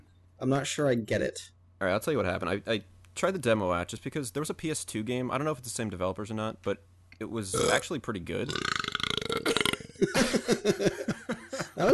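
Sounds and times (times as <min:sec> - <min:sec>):
speech: 0:00.4 - 0:09.0, 0:10.0 - 0:11.9
long loud guttural burp: 0:07.5 - 0:07.8, 0:08.5 - 0:10.0
laughter: 0:09.9 - 0:11.9.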